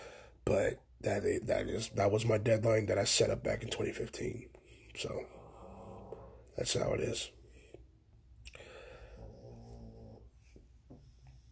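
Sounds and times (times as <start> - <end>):
speech: 0.5 - 5.4, 6.6 - 7.4
sleeping dog snoring: 5.2 - 6.5, 9.0 - 11.5.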